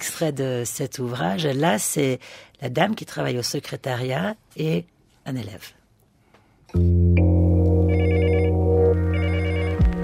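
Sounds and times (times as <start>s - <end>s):
speech: 0.1s - 5.8s, 6.7s - 7.1s
telephone ringing: 7.9s - 10.0s.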